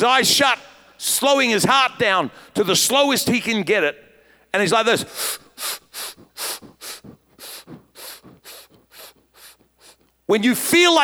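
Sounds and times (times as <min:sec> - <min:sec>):
speech: 0:00.0 - 0:05.8, 0:10.3 - 0:11.0
man lung-packing with rapid breath intakes before a dive: 0:02.3 - 0:02.6, 0:04.1 - 0:10.3.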